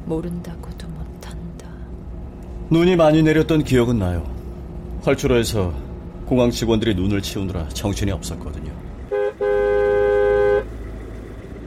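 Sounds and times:
low traffic rumble: 0.0s - 11.6s
speech: 0.1s - 0.9s, 2.7s - 4.3s, 5.0s - 8.9s
car horn honking: 9.1s - 10.8s.

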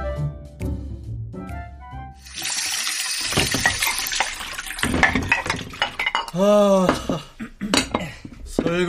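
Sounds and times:
steady rush of running tap water: 2.2s - 6.4s
dishes and cutlery clinking and clattering against each other: 2.9s - 7.1s, 7.7s - 8.8s
brief voice: 6.3s - 7.4s.

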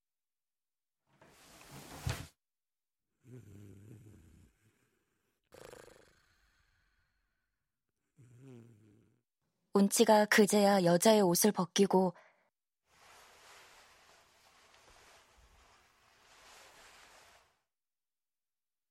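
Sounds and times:
snoring: 3.2s - 9.3s
speech: 9.8s - 12.2s.

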